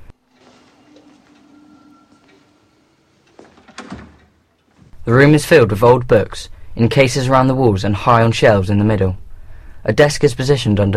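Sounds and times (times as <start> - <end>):
door opening off a dark corridor: 0.0 - 5.5
door handle being tried: 0.3 - 5.0
speech: 5.0 - 9.2, 9.8 - 10.9.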